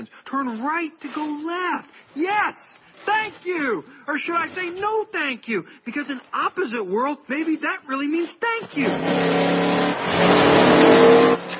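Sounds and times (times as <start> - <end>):
speech: 0.0 - 11.4
car engine revving and driving off: 8.6 - 11.5.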